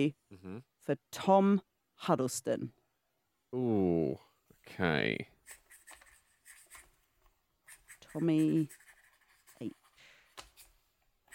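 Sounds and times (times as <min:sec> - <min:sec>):
speech: 0:00.0 - 0:02.8, 0:03.5 - 0:05.3, 0:08.2 - 0:08.8, 0:09.6 - 0:09.8
pencil scribbling on paper: 0:05.4 - 0:07.0, 0:07.6 - 0:11.3.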